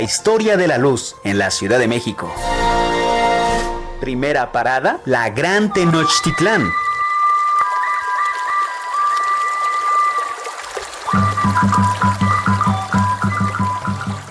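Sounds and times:
speech: 0:00.0 - 0:03.0, 0:04.0 - 0:06.9
sustained high whistling tones: 0:05.5 - 0:14.2
water trickling and gurgling: 0:05.7 - 0:14.2.

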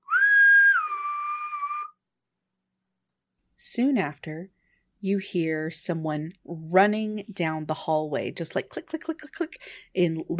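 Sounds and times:
person at a door whistling: 0:00.0 - 0:02.0
speech: 0:03.6 - 0:10.3.

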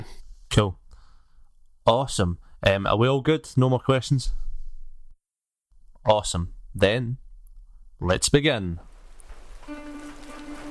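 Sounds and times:
speech: 0:00.5 - 0:00.8, 0:01.8 - 0:04.4, 0:06.0 - 0:07.2, 0:08.0 - 0:08.9
heavy icy rain hammering down: 0:08.8 - 0:10.6.

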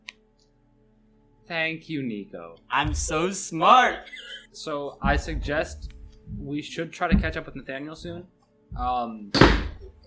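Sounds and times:
speech: 0:01.5 - 0:09.7
chair landing with a heavy thunk: 0:05.0 - 0:06.5, 0:07.1 - 0:08.2, 0:08.8 - 0:10.0.

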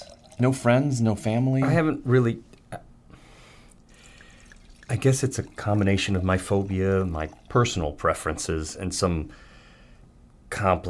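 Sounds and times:
wine pouring into glasses in a spacious kitchen: 0:00.0 - 0:01.8, 0:03.8 - 0:08.7
speech: 0:00.4 - 0:02.5, 0:04.9 - 0:09.5, 0:10.5 - 0:10.8.

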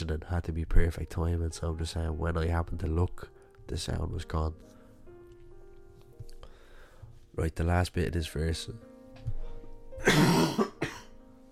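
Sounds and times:
speech: 0:00.0 - 0:04.8, 0:07.4 - 0:08.9
heavy harsh cough: 0:10.0 - 0:11.1.

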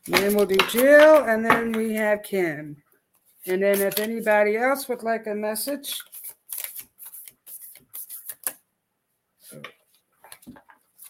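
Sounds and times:
deck of cards being shuffled during a card reading: 0:00.0 - 0:02.2, 0:03.4 - 0:04.4, 0:05.8 - 0:08.6, 0:09.6 - 0:11.0
speech: 0:00.0 - 0:02.8, 0:03.4 - 0:06.2.

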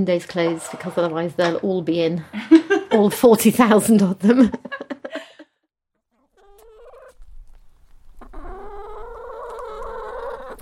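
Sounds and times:
speech: 0:00.0 - 0:04.8
laughter: 0:02.3 - 0:03.3, 0:04.3 - 0:05.5
hens clucking and squawking at feeding: 0:06.2 - 0:10.5.

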